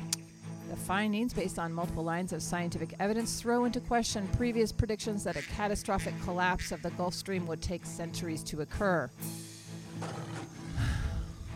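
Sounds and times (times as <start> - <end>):
speech: 0.8 - 9.4
tiger growling: 9.8 - 11.5.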